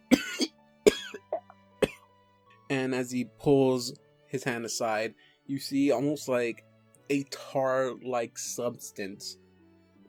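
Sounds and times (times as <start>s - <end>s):
voice imitating a nasty rasping cough of a sick guard captain: 0.1s - 2.0s
speech: 2.7s - 9.4s.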